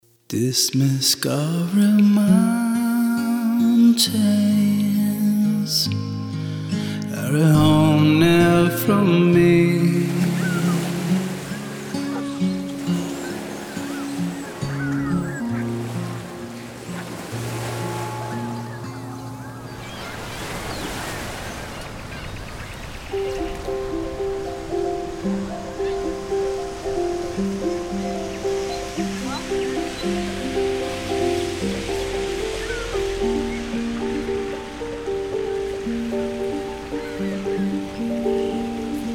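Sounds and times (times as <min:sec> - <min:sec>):
speech: 0:00.3 - 0:03.3, 0:04.0 - 0:04.9, 0:05.6 - 0:10.2
sea waves washing against the shore: 0:01.3 - 0:39.1
sustained melodic tune: 0:07.2 - 0:20.4, 0:23.1 - 0:39.1
wind on the shore: 0:07.6 - 0:39.1.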